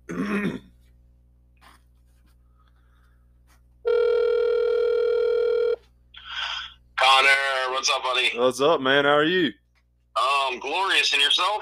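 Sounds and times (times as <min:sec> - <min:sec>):
throat clearing: 0:00.0 - 0:00.8
quiet hum: 0:00.0 - 0:11.5
speech: 0:07.9 - 0:09.6, 0:10.5 - 0:11.5.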